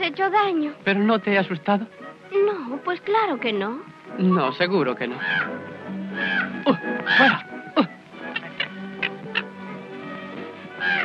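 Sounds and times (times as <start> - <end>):
speech: 0.0 - 8.0
crows cawing: 4.3 - 7.5, 8.2 - 10.0, 10.7 - 11.0.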